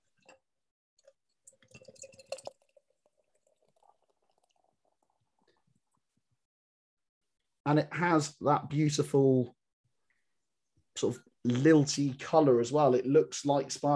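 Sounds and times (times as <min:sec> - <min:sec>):
hazy beer pouring into a glass: 0:01.0 - 0:05.8
speech: 0:07.7 - 0:09.6, 0:11.0 - 0:13.9.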